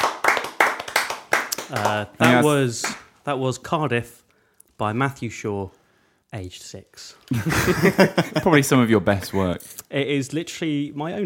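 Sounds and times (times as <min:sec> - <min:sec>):
small group hand clapping: 0:00.0 - 0:03.1
speech: 0:01.7 - 0:04.2, 0:04.8 - 0:11.2
laughter: 0:07.3 - 0:09.4.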